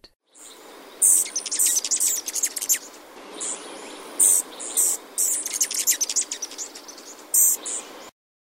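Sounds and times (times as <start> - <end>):
Rufous Hummingbird singing: 0.3 - 8.1.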